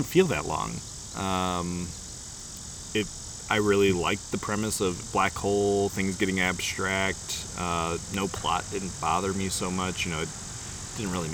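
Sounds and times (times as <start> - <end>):
speech: 0.0 - 2.0, 2.9 - 10.4, 11.0 - 11.3
cicada buzzing outside: 0.0 - 11.3.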